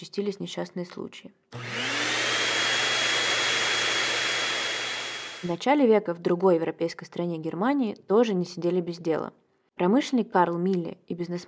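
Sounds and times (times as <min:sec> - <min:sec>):
speech: 0:00.0 - 0:01.8, 0:05.4 - 0:11.4
early motorized street vacuum cleaner in London roaring: 0:01.6 - 0:05.5.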